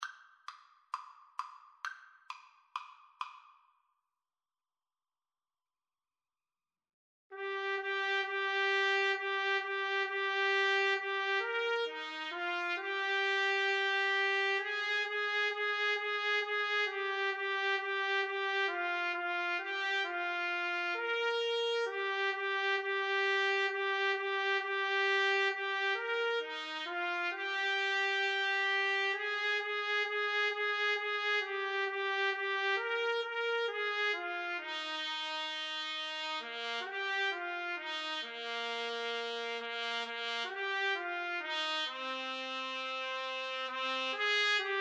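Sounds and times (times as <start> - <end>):
trumpet and trombone karaoke duet in boogie style: 7.4 - 44.7.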